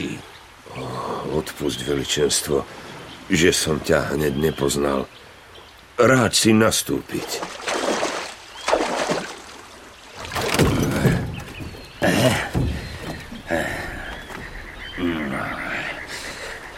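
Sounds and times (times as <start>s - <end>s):
speech: 1.3s - 5.3s, 6.0s - 7.7s
water gurgling in swirls: 7.1s - 13.8s
oars splashing in water rowing a small boat: 7.1s - 15.0s
faint wooden creaks of a small rowed boat: 10.1s - 16.7s.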